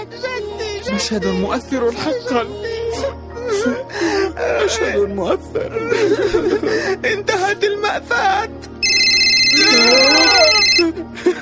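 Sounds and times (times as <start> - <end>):
speech: 0.9 - 8.7, 9.6 - 11.3
laughter: 5.7 - 7.4, 9.7 - 11.3
phone ringtone with bright sustained electronic tones: 8.8 - 10.9.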